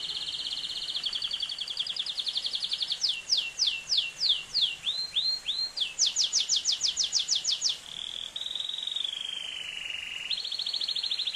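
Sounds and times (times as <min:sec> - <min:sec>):
Atlantic canary song with whistled sweeps and buzzy trills: 0:00.0 - 0:11.3.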